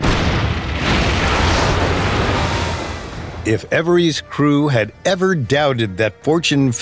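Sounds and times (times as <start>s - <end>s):
cannon fire: 0.0s - 3.5s
explosion: 0.0s - 3.6s
speech: 3.4s - 6.8s.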